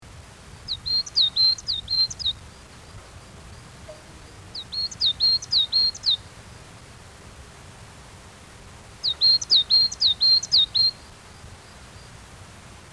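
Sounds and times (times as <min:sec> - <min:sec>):
coal tit calling: 0:00.6 - 0:02.4, 0:03.0 - 0:06.3, 0:09.0 - 0:11.1.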